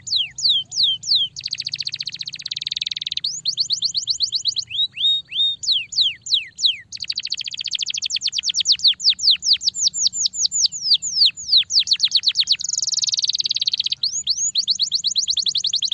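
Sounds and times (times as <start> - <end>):
Belgian canary song of repeated downslurred whistles: 0.0 - 15.9.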